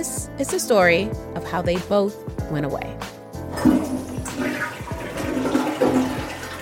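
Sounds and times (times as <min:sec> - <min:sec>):
speech: 0:00.0 - 0:03.8
toilet flushing: 0:03.5 - 0:06.6.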